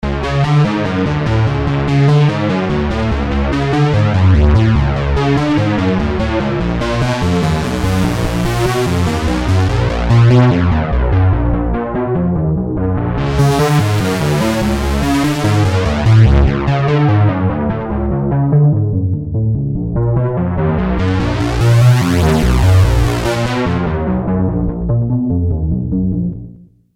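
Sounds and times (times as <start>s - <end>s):
EBM synth bass: 0.0s - 26.7s.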